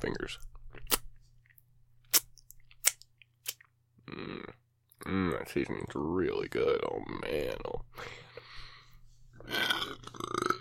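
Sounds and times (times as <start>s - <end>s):
speech: 0.0s - 0.5s, 5.4s - 8.3s
person belching after eating well-seasoned food: 4.0s - 4.6s, 9.4s - 10.5s.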